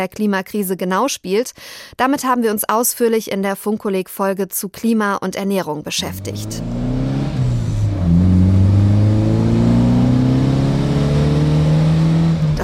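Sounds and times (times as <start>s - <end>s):
speech: 0.0s - 6.8s
combustion-engine car revving: 6.0s - 12.6s.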